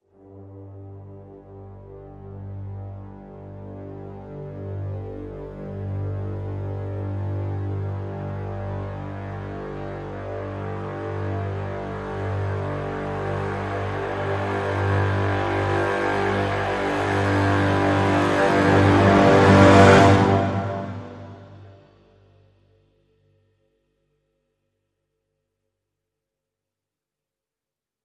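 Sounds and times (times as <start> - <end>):
low brass swell in G: 0.2 - 22.2.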